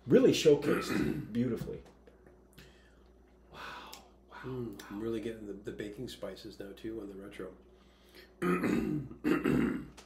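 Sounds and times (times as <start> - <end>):
speech: 0.1 - 2.0, 4.4 - 10.0
people clearing their throats while tasting: 0.6 - 1.4, 8.4 - 10.0.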